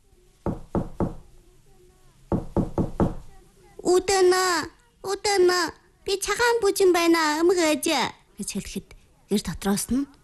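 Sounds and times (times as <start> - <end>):
knocking on the wooden door of a wooden dwelling: 0.4 - 1.2, 2.3 - 3.3
speech: 3.8 - 10.2.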